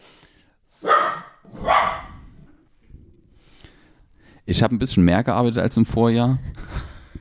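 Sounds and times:
dog barking at a tangle of cables: 0.8s - 2.2s
speech: 4.5s - 6.6s.

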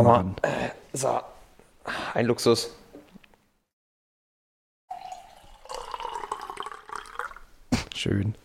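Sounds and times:
speech: 0.0s - 2.8s, 8.0s - 8.4s
water pouring from a Brita filter jug into a glass: 4.9s - 7.5s.

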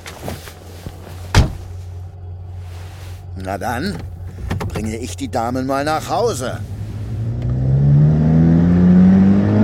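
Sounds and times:
speech: 3.4s - 4.2s, 4.8s - 6.7s
car engine revving and accelerating: 5.9s - 9.6s.

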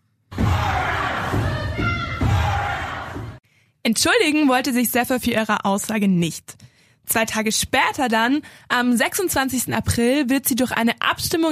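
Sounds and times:
crowd of protesters chanting demands in legislative gallery: 0.3s - 3.4s
speech: 3.9s - 11.5s.

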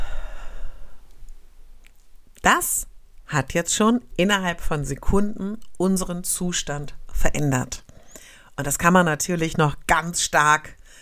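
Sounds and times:
deep breath in and out during a guided breathing exercise: 0.0s - 1.1s, 7.9s - 8.5s, 10.8s - 11.0s
speech: 2.5s - 7.8s, 8.6s - 10.8s.

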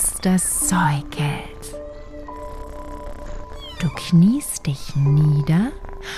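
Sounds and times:
speech: 0.2s - 1.5s, 3.8s - 6.1s
white cat with bright blue eyes meowing: 2.3s - 4.6s.

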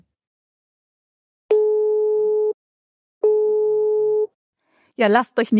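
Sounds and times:
electronic telephone signal tones: 1.5s - 2.6s, 3.3s - 4.3s
speech: 5.0s - 5.5s.

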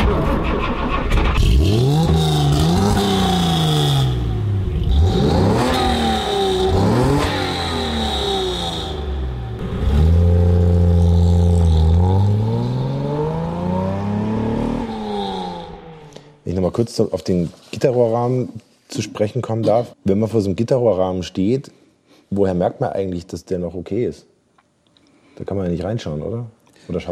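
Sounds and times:
speech: 0.1s - 1.0s, 16.8s - 24.3s, 25.4s - 27.1s
Mercedes-Benz 300 SL sports car engine revving in Rüsselsheim: 1.3s - 16.4s.

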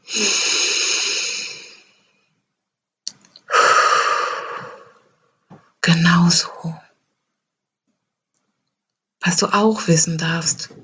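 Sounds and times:
deep breaths during a relaxation exercise: 0.0s - 1.9s, 3.5s - 5.0s
speech: 0.1s - 0.5s, 6.3s - 6.8s, 9.3s - 10.8s.

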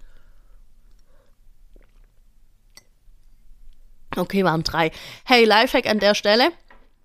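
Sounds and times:
soft wet mouth and throat sounds: 0.9s - 2.4s
quiet gulps of water being swallowed: 1.6s - 2.2s
speech: 4.2s - 6.6s.

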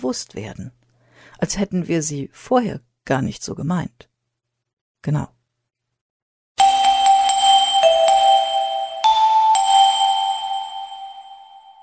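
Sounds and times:
speech: 0.0s - 4.1s, 5.0s - 5.4s
bright bell chiming two-tone dings: 6.6s - 11.8s.

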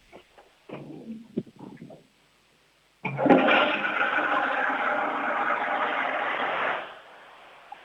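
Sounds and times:
toilet flushing: 3.0s - 7.8s.

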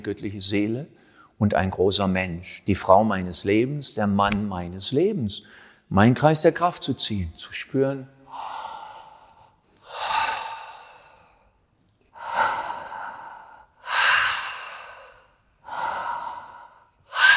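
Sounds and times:
speech: 0.0s - 8.6s
deep breaths taken as a breathing exercise: 0.9s - 1.4s, 5.4s - 5.9s, 8.2s - 17.3s.

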